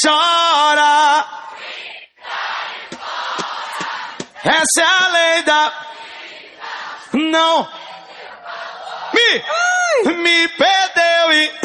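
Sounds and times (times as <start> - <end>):
speech: 0.0 - 1.9, 4.4 - 5.9, 7.1 - 7.8, 9.3 - 11.6
live crowd roaring and cheering: 1.5 - 9.6.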